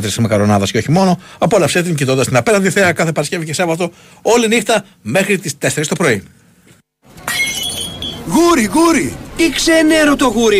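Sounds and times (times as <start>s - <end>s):
speech: 0.0s - 6.4s, 8.3s - 10.5s
drinking glass shattering: 7.2s - 8.3s
tinkling ringing glass shards settling: 7.2s - 8.3s.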